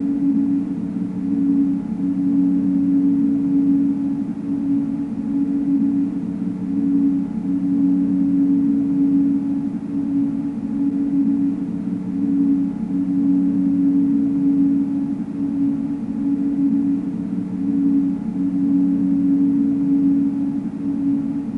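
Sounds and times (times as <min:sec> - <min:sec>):
drone: 0:00.0 - 0:21.5.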